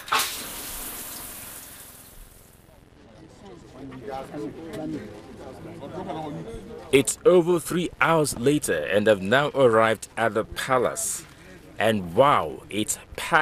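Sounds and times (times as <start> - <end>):
shower water running: 0.0 - 2.4
speech: 3.7 - 13.3.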